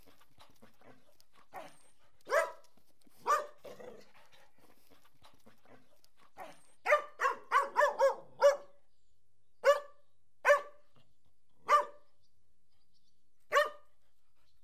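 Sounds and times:
dog barking: 2.3 - 2.6, 3.2 - 4.0, 6.4 - 8.8, 9.6 - 10.8, 11.6 - 12.0, 13.5 - 13.8.

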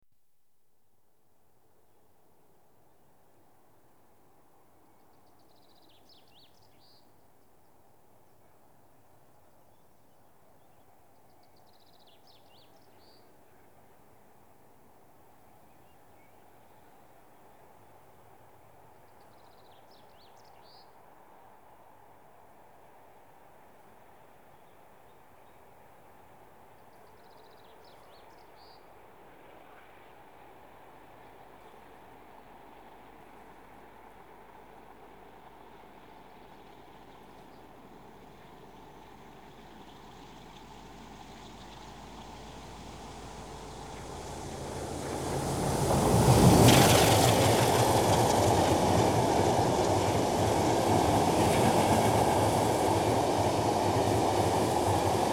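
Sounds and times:
diesel goods trains passing: 30.7 - 55.3.

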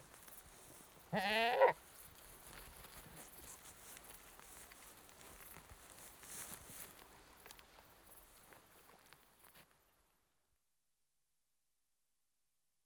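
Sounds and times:
annoyed British goat giving a wavering nasal bleat: 1.1 - 1.8.

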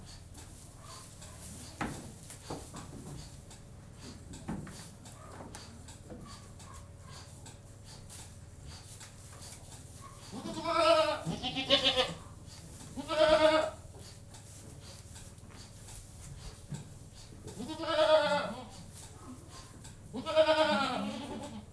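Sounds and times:
domestic goat bleating in a goat-house: 10.3 - 12.3, 12.9 - 13.9, 17.5 - 18.9, 20.1 - 21.7.

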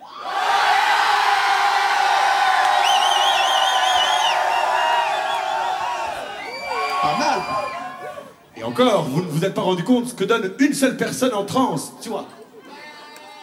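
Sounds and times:
higher voices whooping above the crowd: 0.0 - 8.5
huge crowd of about 6000 people yelling in unison: 0.0 - 8.7
speech: 8.7 - 12.4.

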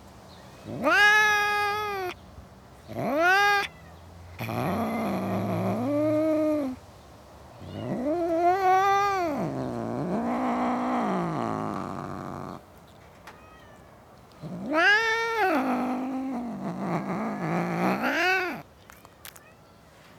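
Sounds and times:
cat caterwauling in a suburban garden: 0.6 - 2.2, 2.9 - 3.8, 4.4 - 6.8, 7.6 - 12.6, 14.4 - 18.6.

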